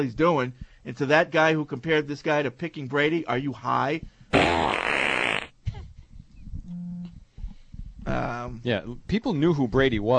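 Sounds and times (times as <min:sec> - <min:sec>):
speech: 0:00.0 - 0:04.8, 0:08.1 - 0:10.1
loud raspy fart sound effect: 0:04.3 - 0:05.6.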